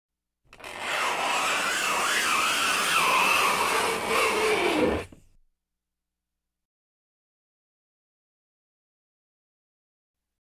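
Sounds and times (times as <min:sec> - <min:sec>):
fingernails scraping blackboard: 0:00.6 - 0:05.2.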